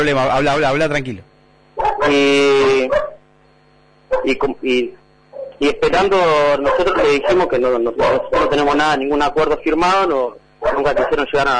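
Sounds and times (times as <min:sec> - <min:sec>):
speech: 0:00.0 - 0:01.3, 0:02.0 - 0:03.1, 0:04.2 - 0:05.0, 0:05.6 - 0:11.5
dog barking: 0:01.8 - 0:02.2, 0:02.8 - 0:03.2, 0:04.1 - 0:04.4, 0:05.3 - 0:05.6, 0:06.6 - 0:08.8, 0:10.6 - 0:11.2.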